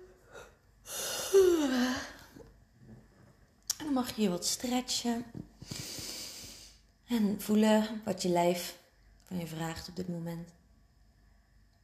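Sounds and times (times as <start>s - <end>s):
person giving a long breathy yawn: 0.3s - 2.3s
speech: 4.0s - 5.4s, 7.1s - 10.6s.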